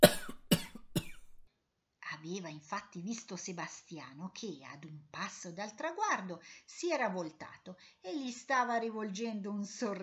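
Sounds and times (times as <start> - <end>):
violent coughing after choking on juice: 0.0 - 1.4
speech: 2.2 - 10.0.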